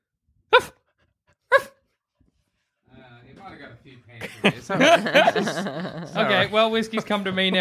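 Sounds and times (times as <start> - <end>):
dog barking: 1.5 - 1.8
speech: 3.4 - 7.5
laughter: 4.2 - 7.5.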